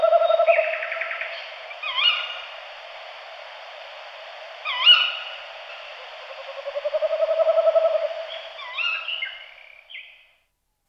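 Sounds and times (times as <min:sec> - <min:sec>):
Tawny Owl Strix aluco hooting: 0:00.0 - 0:02.6, 0:04.6 - 0:10.3.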